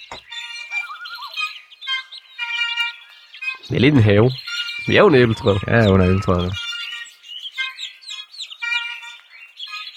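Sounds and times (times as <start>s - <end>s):
birds chirping and tweeting: 0.0s - 9.9s
speech: 3.7s - 6.6s.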